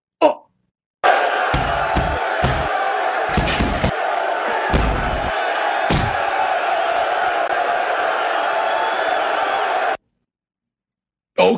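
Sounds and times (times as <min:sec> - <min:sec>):
roaring crowd in a radio stinger: 0:01.0 - 0:10.0
heavy punch-like slams in a radio stinger: 0:01.6 - 0:02.7, 0:03.3 - 0:04.0, 0:04.7 - 0:06.3.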